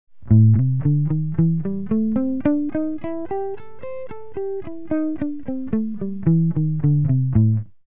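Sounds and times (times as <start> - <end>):
minor blues music: 0.2 - 7.8.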